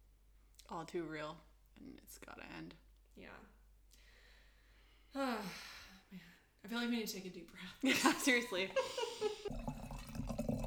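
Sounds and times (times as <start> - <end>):
speech: 0.7 - 3.6, 5.1 - 9.7
laughter: 7.9 - 9.5
wine pouring into a glass with glugging splash: 8.4 - 10.6
ringing clink of a wine glass: 9.5 - 10.6.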